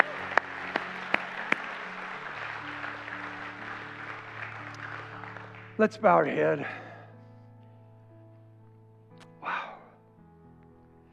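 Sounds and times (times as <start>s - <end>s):
group clapping in unison: 0.0s - 6.8s
speech: 5.8s - 6.8s.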